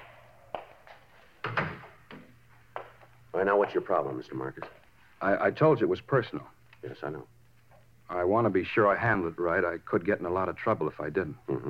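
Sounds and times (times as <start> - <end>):
door swinging shut with a solid thud: 1.4 - 2.0
speech: 3.4 - 7.4, 8.1 - 11.6.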